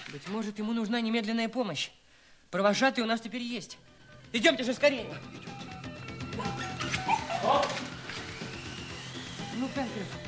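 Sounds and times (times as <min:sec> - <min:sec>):
speech: 0:00.1 - 0:05.6, 0:09.6 - 0:10.2
lost dog barking and yipping with a whining, whimpering edge: 0:06.3 - 0:07.9.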